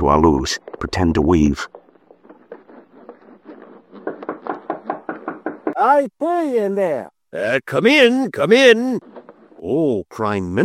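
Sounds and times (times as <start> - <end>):
speech: 0.2 - 1.8, 5.8 - 10.6
rapid knocking on a door: 4.0 - 5.8.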